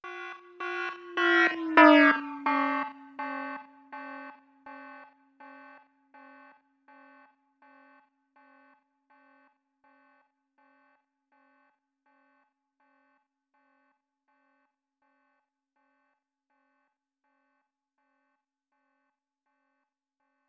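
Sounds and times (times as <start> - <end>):
doppler shifted iPhone alarm ringtone: 0.0 - 7.2.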